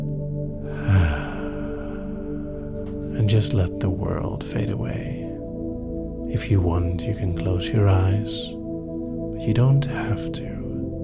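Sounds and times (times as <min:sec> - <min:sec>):
deep breath drawn in and let out: 0:00.6 - 0:03.1
speech: 0:03.3 - 0:05.2, 0:06.3 - 0:08.6, 0:09.4 - 0:10.6.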